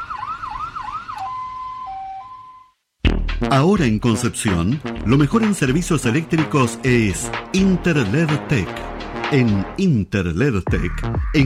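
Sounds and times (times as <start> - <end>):
ambulance siren: 0.0 - 2.8
speech: 3.4 - 11.4.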